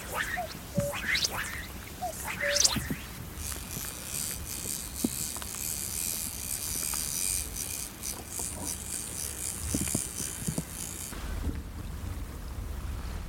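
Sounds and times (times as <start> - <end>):
cuckoo calling over a loch: 0.0 - 3.2
water noise of a loch: 0.0 - 3.9
steady outdoor wind: 0.0 - 13.2.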